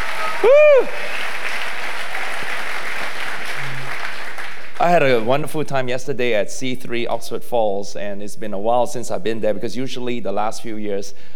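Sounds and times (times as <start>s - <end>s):
packed crowd clapping for two pastors: 0.0s - 5.5s
speech: 0.8s - 1.3s, 4.8s - 11.3s.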